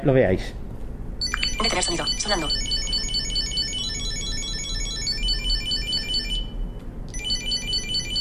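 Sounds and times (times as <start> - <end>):
speech: 0.0 - 0.6, 1.6 - 2.9
Chipolo Bluetooth item tracker playing its ring alert: 1.2 - 6.6, 7.2 - 8.1.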